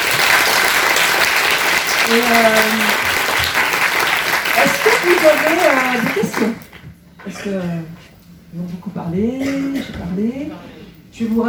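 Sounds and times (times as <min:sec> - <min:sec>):
crowd applauding in a room: 0:00.0 - 0:06.8
speech: 0:02.1 - 0:03.0, 0:04.6 - 0:06.6, 0:07.2 - 0:11.4.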